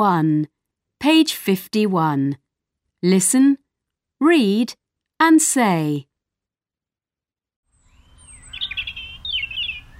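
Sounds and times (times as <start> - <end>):
speech: 0.0 - 2.4, 3.0 - 3.6, 4.2 - 6.1
birds singing: 7.7 - 9.9.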